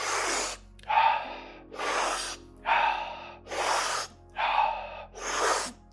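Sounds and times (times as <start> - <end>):
rapid rhythmic breathing during a guided breathing exercise: 0.0 - 5.9.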